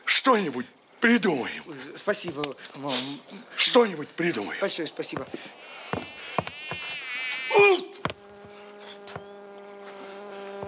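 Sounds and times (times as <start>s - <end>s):
speech: 0.2s - 6.1s
fly buzzing: 4.4s - 10.6s
sharp taps and knocks: 5.1s - 7.0s.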